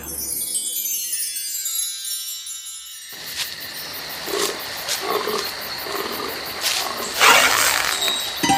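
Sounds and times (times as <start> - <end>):
deer calling with bleating roar-like cries: 4.2 - 8.4.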